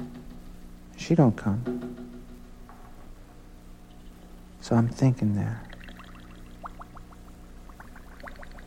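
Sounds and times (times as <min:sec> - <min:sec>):
steady low hum: 0:00.0 - 0:08.6
speech: 0:01.1 - 0:01.8, 0:04.7 - 0:05.7
water bubbling and gurgling: 0:05.6 - 0:08.6.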